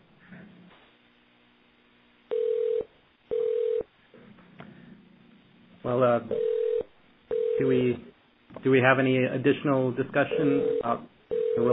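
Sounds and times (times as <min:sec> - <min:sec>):
loud steady electronic tones from a phone line: 0:02.3 - 0:03.8, 0:06.3 - 0:07.7, 0:10.3 - 0:11.7
speech: 0:05.9 - 0:06.6, 0:07.6 - 0:11.7.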